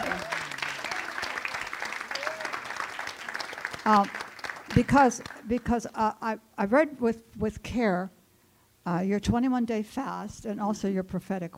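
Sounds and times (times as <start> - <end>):
people calling out over applause: 0.0 - 1.3
room full of people clapping: 0.0 - 5.8
speech: 3.9 - 8.2, 8.8 - 11.5.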